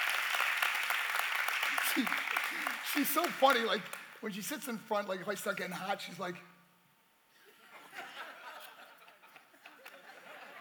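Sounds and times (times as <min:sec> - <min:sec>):
audience applause: 0:00.0 - 0:04.2
speech: 0:02.0 - 0:06.5
laughter: 0:07.4 - 0:10.5.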